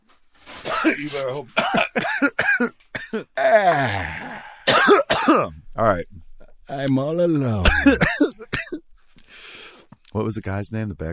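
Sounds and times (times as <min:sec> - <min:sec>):
person coughing: 0:00.7 - 0:05.6, 0:07.6 - 0:08.8
speech: 0:00.8 - 0:08.3, 0:10.1 - 0:11.1.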